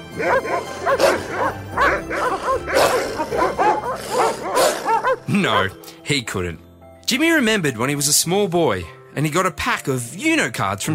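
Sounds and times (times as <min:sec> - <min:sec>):
dogs barking and yipping: 0:00.0 - 0:05.9
speech: 0:00.2 - 0:02.7, 0:05.3 - 0:10.9.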